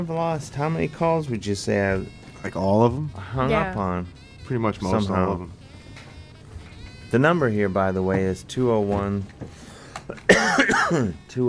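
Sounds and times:
speech: 0:00.0 - 0:05.6, 0:07.1 - 0:11.4
person coughing into a microphone: 0:10.2 - 0:11.2.

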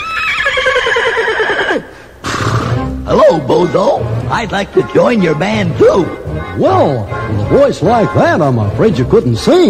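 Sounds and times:
horse neighing: 0:00.0 - 0:02.9
speech: 0:03.1 - 0:09.6.

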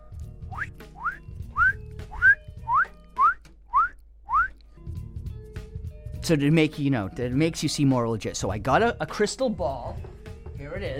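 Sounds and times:
rising whistle chirps: 0:00.5 - 0:04.6
speech: 0:06.3 - 0:10.9.

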